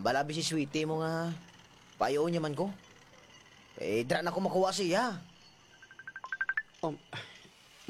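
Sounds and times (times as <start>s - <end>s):
speech: 0.0s - 2.9s, 3.8s - 5.3s, 6.8s - 7.3s
cellphone ringing with incoming Messenger call: 5.7s - 6.8s.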